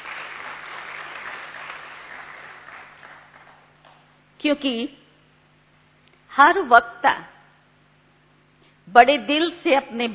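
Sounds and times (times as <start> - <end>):
audience at a talk applauding: 0.0 - 4.0
speech: 4.4 - 5.0, 6.4 - 7.3, 8.9 - 10.1.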